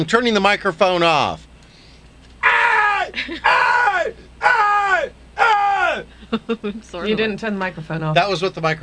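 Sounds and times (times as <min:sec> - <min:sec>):
speech: 0:00.0 - 0:01.5, 0:03.2 - 0:03.6, 0:06.3 - 0:08.8
very loud screaming alarm clock: 0:02.4 - 0:06.0.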